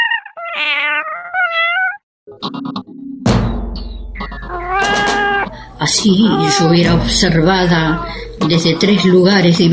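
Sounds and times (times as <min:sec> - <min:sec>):
cats meowing and caterwauling: 0:00.0 - 0:02.0, 0:04.2 - 0:05.6, 0:06.2 - 0:06.9, 0:07.7 - 0:08.4
speech: 0:05.8 - 0:09.7.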